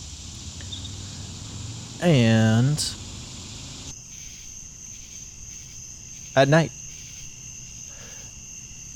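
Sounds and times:
cicadas buzzing on a back porch: 0:00.0 - 0:08.9
speech: 0:02.0 - 0:03.0, 0:06.4 - 0:06.8.

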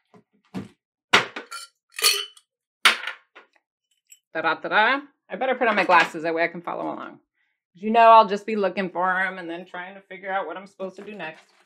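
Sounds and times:
glasses and a shot glass clinking while picked up and set down: 0:01.4 - 0:02.4
speech: 0:04.4 - 0:11.6.

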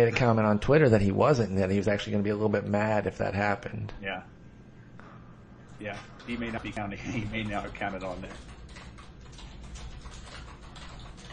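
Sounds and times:
speech: 0:00.0 - 0:04.4, 0:05.8 - 0:08.5
typing on a computer keyboard: 0:06.2 - 0:11.3.

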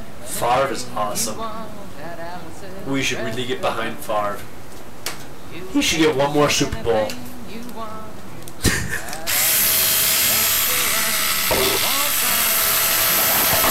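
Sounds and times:
speech: 0:00.4 - 0:04.6, 0:05.5 - 0:09.1
Black & Decker electric power drill whirring: 0:09.3 - 0:13.6.

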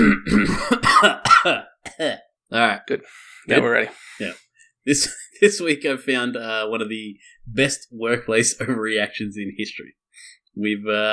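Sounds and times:
person clearing throat loudly: 0:00.0 - 0:02.3
speech: 0:01.0 - 0:11.1.

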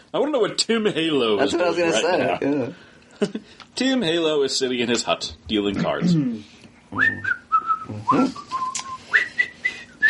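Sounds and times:
speech: 0:00.1 - 0:08.5
person whistling a short jaunty tune: 0:07.0 - 0:10.0.

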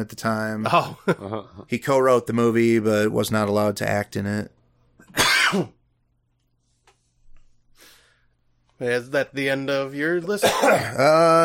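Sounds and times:
speech: 0:00.0 - 0:05.8, 0:08.8 - 0:11.4
loud cough rasping into throat clearing: 0:05.0 - 0:05.8, 0:10.4 - 0:11.4.

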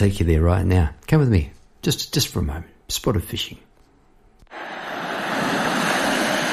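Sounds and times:
speech: 0:00.0 - 0:03.7
ocean surf at a beach at night at low tide: 0:04.5 - 0:06.5.

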